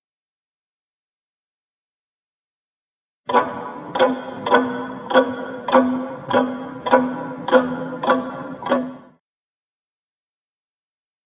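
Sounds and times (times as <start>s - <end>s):
clock ticking loudly: 3.3s - 9.2s.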